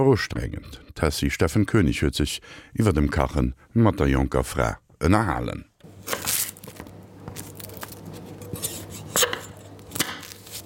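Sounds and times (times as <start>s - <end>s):
speech: 0.0s - 5.7s
onions, ginger and garlic being chopped small: 6.0s - 10.6s.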